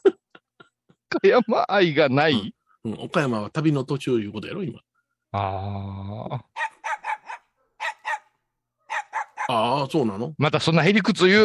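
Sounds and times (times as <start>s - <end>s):
speech: 1.2s - 6.7s, 9.5s - 11.4s
dog barking: 6.6s - 9.7s.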